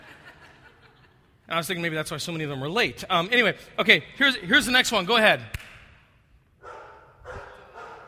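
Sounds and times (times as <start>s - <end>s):
laughter: 0.0s - 1.5s
speech: 1.5s - 5.7s
dog barking: 6.6s - 8.0s.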